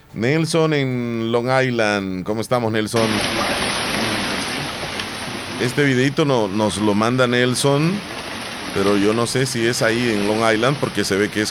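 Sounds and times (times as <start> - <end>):
speech: 0.2 - 3.9, 5.6 - 11.4
steady rain pattering on surfaces in Santa Rosa de Lima: 2.4 - 11.4.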